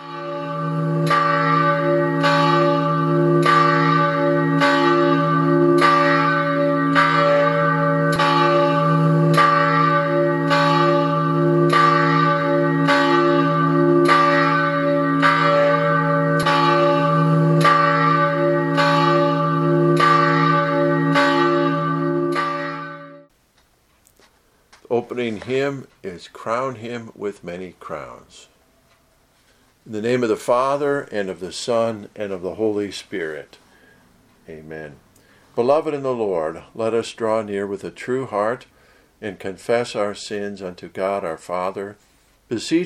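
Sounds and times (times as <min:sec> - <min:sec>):
church bell tolling before a church service: 0:00.0 - 0:23.3
speech: 0:25.4 - 0:28.6, 0:29.8 - 0:33.6, 0:34.5 - 0:35.0, 0:35.6 - 0:42.8.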